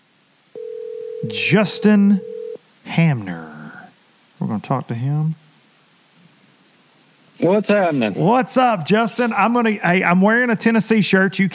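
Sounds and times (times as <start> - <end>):
quiet hiss: 0.0 - 11.5
steady clear telephone ringing tone: 0.6 - 2.6
speech: 1.2 - 2.3, 3.0 - 3.5, 4.4 - 5.4, 7.4 - 11.5.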